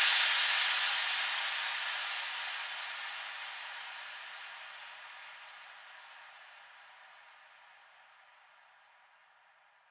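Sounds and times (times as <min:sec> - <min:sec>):
psytrance crash cymbal hit effect: 0:00.0 - 0:05.4.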